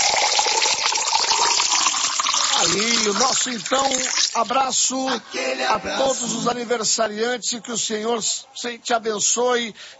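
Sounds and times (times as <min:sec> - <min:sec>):
spring water gushing from a tap: 0:00.0 - 0:04.5
speech: 0:02.6 - 0:09.9.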